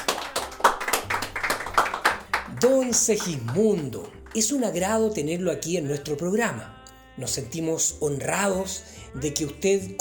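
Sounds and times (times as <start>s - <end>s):
studio audience applause greeting a guest: 0.0s - 4.6s
speech: 2.6s - 9.9s.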